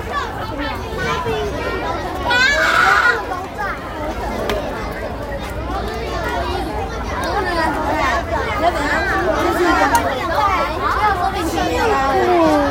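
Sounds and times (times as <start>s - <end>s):
children talking and calling at an amusement park: 0.0s - 12.7s
child shout or squeal: 2.2s - 3.3s.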